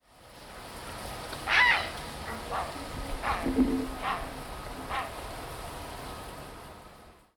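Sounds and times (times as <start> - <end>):
steady noisy background: 0.4 - 7.2
Grey heron giving a harsh hoarse squawk: 1.5 - 5.2.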